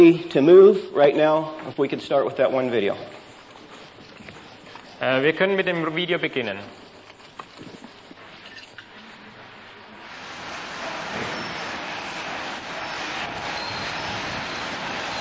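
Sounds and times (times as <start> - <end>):
speech: 0.0 - 3.2, 5.0 - 6.8
van engine and road rumble driving into a prison: 10.0 - 15.1.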